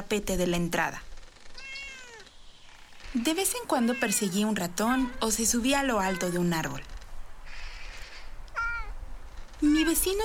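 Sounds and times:
speech: 0:00.1 - 0:01.1, 0:03.1 - 0:06.9, 0:09.6 - 0:10.2
cat meowing: 0:01.6 - 0:02.3, 0:03.7 - 0:06.8, 0:07.6 - 0:09.0.

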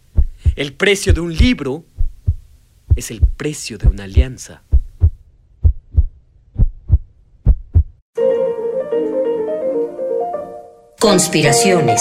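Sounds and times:
heartbeat sound effect thumping: 0:00.0 - 0:08.0
speech: 0:00.6 - 0:01.9, 0:03.0 - 0:04.7, 0:11.0 - 0:11.9
music: 0:08.1 - 0:11.9.

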